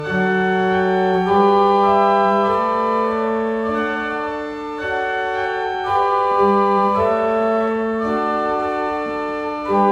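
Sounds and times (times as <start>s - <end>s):
pipe organ four-foot octave stop: 0.0s - 9.8s.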